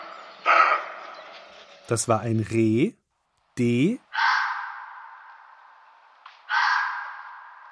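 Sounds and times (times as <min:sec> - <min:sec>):
red fox hoarse breathy screams: 0:00.4 - 0:01.0, 0:04.1 - 0:05.3, 0:06.5 - 0:07.6
speech: 0:01.9 - 0:03.0, 0:03.6 - 0:04.0.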